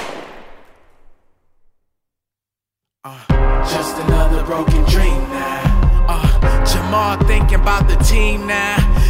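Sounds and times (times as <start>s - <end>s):
single gunshot with echo: 0.0s - 1.3s
speech: 3.0s - 9.0s.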